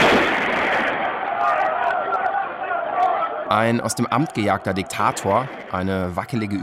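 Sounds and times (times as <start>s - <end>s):
gunshots at a street demonstration: 0.0s - 2.1s
people shouting at a street protest: 0.0s - 5.5s
loud dense crowd noise from a street protest: 0.0s - 6.6s
speech: 3.5s - 6.6s.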